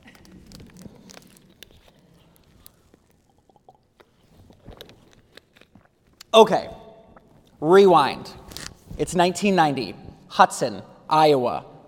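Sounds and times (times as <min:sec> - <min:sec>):
person swallowing: 0:00.0 - 0:05.0, 0:05.8 - 0:07.6
person sipping water: 0:00.0 - 0:07.6
speech: 0:06.3 - 0:06.8, 0:07.6 - 0:08.4, 0:09.0 - 0:11.7.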